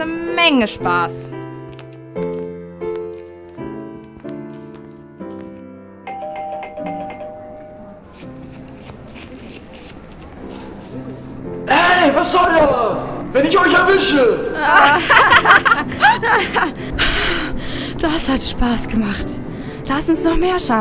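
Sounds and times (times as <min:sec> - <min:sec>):
speech: 0:00.0 - 0:01.4, 0:12.2 - 0:16.9, 0:18.0 - 0:20.8
front doorbell rung loudly as a prank: 0:06.1 - 0:08.0
laughter: 0:14.4 - 0:17.0.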